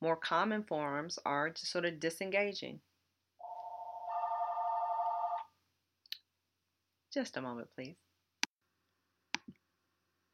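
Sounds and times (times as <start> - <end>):
speech: 0.0 - 2.9, 7.1 - 8.0
telephone ringing with an electronic tone: 3.4 - 5.4.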